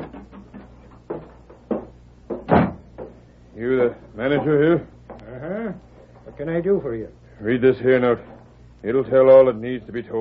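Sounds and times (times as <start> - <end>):
door closing with a firm loud thud: 0.0 - 3.1
knocking thumps: 0.0 - 3.2
speech: 3.6 - 4.9, 6.4 - 10.1.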